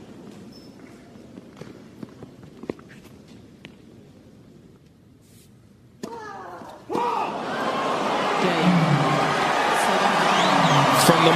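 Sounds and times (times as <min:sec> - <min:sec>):
large tennis arena crowd cheering in Melbourne: 0:06.9 - 0:11.3.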